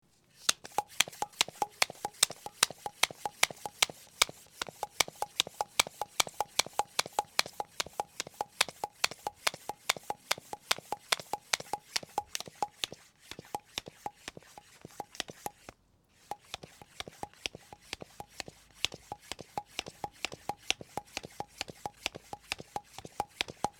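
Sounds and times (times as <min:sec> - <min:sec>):
bicycle pump: 0:00.3 - 0:23.7.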